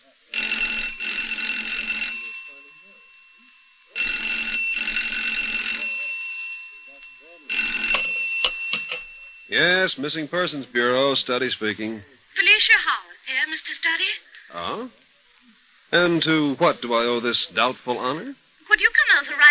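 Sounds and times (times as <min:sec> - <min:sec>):
faint indistinct sounds: 0:00.0 - 0:19.4
old-style telephone bell ringing: 0:00.3 - 0:10.0
speech: 0:09.5 - 0:12.9, 0:13.9 - 0:15.0, 0:15.9 - 0:18.4.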